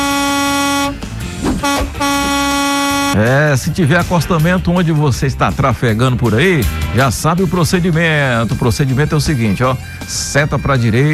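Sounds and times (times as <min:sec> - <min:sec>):
loud truck air horn blaring in long sustained blasts: 0:00.0 - 0:03.2
speech: 0:03.2 - 0:11.1.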